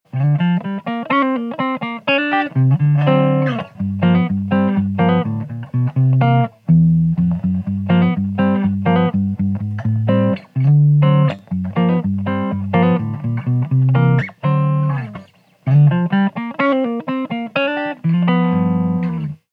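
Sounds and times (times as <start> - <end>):
clean Collings guitar: 0.1 - 19.5.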